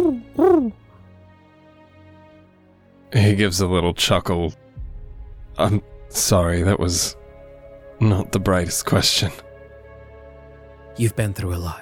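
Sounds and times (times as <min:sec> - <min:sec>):
owl hooting: 0:00.0 - 0:00.8
speech: 0:03.2 - 0:04.7, 0:05.6 - 0:07.2, 0:08.0 - 0:09.5, 0:11.0 - 0:11.8.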